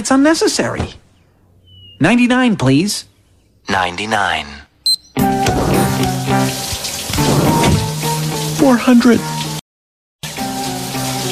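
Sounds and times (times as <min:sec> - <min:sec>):
speech: 0:00.0 - 0:01.0, 0:02.0 - 0:04.6, 0:08.6 - 0:09.4
shower water running: 0:05.2 - 0:09.6, 0:10.2 - 0:11.3.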